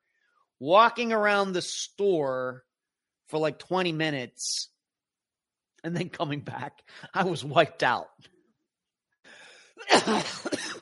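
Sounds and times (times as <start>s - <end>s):
speech: 0.6s - 2.7s, 3.3s - 4.7s, 5.8s - 8.3s, 9.8s - 10.7s
person coughing harshly: 9.8s - 10.7s.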